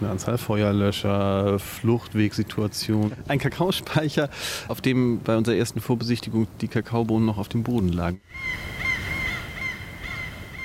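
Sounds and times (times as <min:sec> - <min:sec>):
speech: 0:00.0 - 0:08.7
steady low rumble and hiss: 0:00.0 - 0:08.9
seagulls crying through a thin metal roof: 0:08.2 - 0:10.6.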